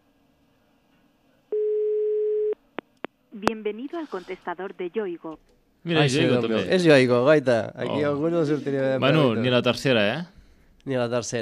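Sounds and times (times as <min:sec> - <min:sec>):
telephone ringing tone while calling a personal phone: 0:01.5 - 0:02.6
speech: 0:03.4 - 0:11.3.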